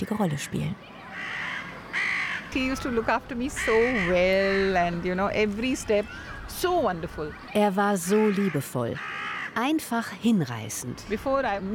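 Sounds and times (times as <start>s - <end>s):
speech: 0.0s - 1.4s, 2.5s - 11.7s
crows cawing: 0.3s - 2.7s, 3.4s - 4.8s, 8.0s - 9.6s.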